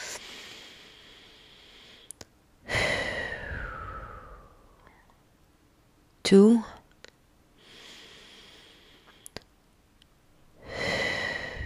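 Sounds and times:
deep breath in and out during a guided calming exercise: 0.0 - 5.2, 7.6 - 9.4, 10.6 - 11.6
speech: 6.3 - 6.8.

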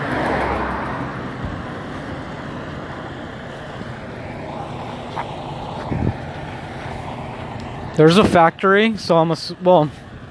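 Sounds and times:
big diesel 18-wheeler trucks idling or rolling near a factory: 0.0 - 10.2
traffic noise: 0.0 - 10.2
speech: 8.0 - 10.0.

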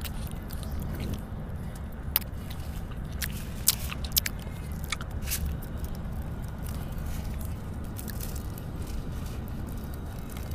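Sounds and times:
steady low rumble: 0.0 - 10.5
wet chewing: 0.0 - 10.5
popping candy crackling and popping while eaten: 2.2 - 10.5.

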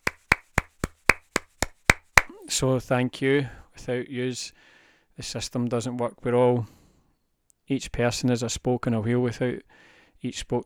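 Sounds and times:
single person clapping hands: 0.0 - 2.5
speech: 2.5 - 6.8, 7.7 - 10.6.

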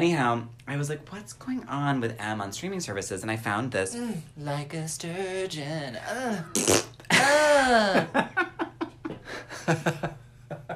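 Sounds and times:
speech: 0.0 - 8.4, 9.4 - 10.2
voice blowing a long buzzy fart imitation: 6.2 - 7.9
person chuckling: 7.0 - 10.7.

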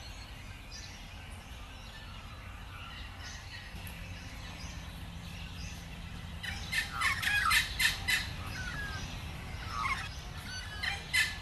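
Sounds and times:
several birds calling and chirping in the morning at the end of winter: 0.0 - 11.4
low steady rumble: 1.4 - 11.4
squawky gobbling bird calls: 6.4 - 9.0, 9.6 - 11.4.

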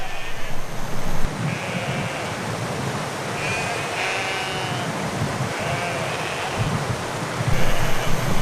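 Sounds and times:
herd of goats bleating on a steep path: 0.0 - 0.7, 1.5 - 2.4, 3.4 - 6.8, 7.5 - 8.4
outdoor wind noise: 0.0 - 3.8, 4.7 - 8.4.

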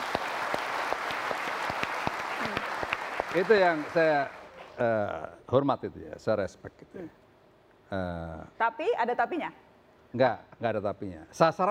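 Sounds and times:
audience applauding university students: 0.0 - 4.6
speech: 3.3 - 7.2, 7.9 - 11.6.

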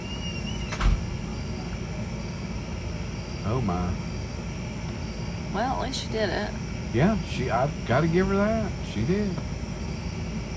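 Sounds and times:
door swinging shut: 0.0 - 1.5
steady low rumble: 0.0 - 10.5
speech: 3.5 - 4.1, 5.5 - 9.6.

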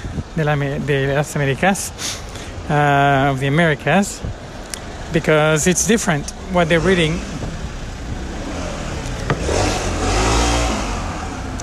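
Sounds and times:
speech: 0.4 - 4.4, 5.1 - 7.4
motorcycle engine revving: 6.4 - 11.6.

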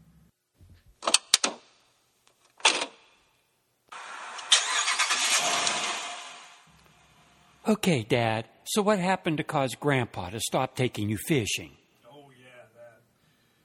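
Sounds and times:
car engine cranking, starting and idling: 3.9 - 7.2
speech: 7.7 - 11.8.

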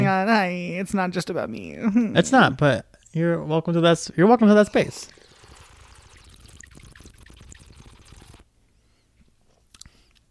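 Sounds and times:
speech: 0.1 - 5.2
Malbec red wine being poured: 4.3 - 8.4.

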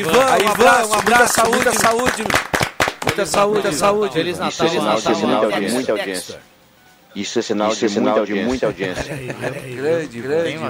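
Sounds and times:
laughter: 0.0 - 2.2, 3.0 - 6.3, 8.4 - 10.6
hands clapping: 0.0 - 3.9
speech: 0.0 - 6.5, 7.1 - 10.6.

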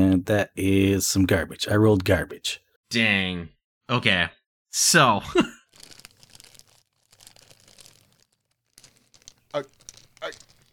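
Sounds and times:
speech: 0.2 - 5.5, 9.5 - 10.4
bag rustling and crinkling as dice are pulled out: 5.7 - 10.7
sharper clack of dice: 5.8 - 10.7.

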